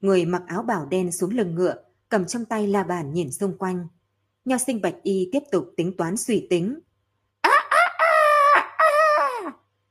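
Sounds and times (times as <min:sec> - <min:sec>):
speech: 0:00.0 - 0:06.9
rooster crowing hoarsely and off-key: 0:07.5 - 0:09.6.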